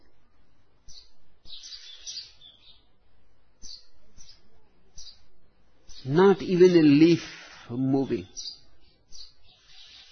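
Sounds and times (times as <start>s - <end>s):
small birds chirping and twittering: 0.0s - 10.0s
bird trill: 0.8s - 3.0s, 3.6s - 5.3s, 8.0s - 10.0s
speech: 6.0s - 8.6s.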